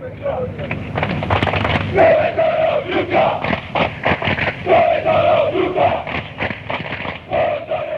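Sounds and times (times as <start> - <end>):
rhythmic clapping or drum hits: 0.7 - 7.9
stadium crowd of rival football supporters chanting in unison as a taunt: 1.7 - 7.9.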